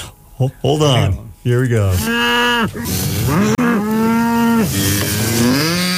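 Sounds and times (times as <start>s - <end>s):
speech: 0.4s - 5.7s
cattle mooing: 1.9s - 5.9s.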